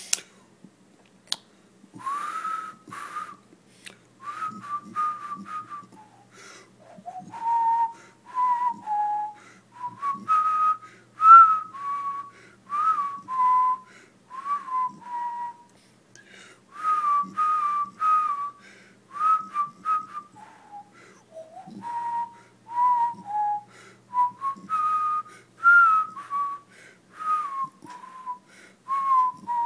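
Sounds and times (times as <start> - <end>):
person whistling a meandering tune: 2.0 - 3.4, 4.2 - 6.3, 6.9 - 15.7, 16.8 - 29.6.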